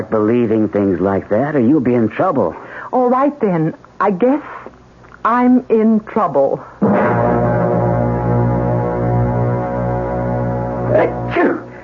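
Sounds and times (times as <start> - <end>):
speech: 0.0 - 4.6, 5.2 - 7.0
droning tonal background: 6.8 - 11.8
person sneezing: 10.9 - 11.8.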